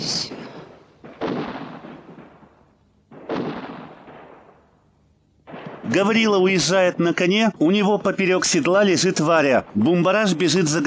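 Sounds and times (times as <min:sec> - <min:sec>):
grenade exploding beside a gramophone in a film scene: 0:00.0 - 0:04.6, 0:05.5 - 0:06.0
speech: 0:05.9 - 0:10.8.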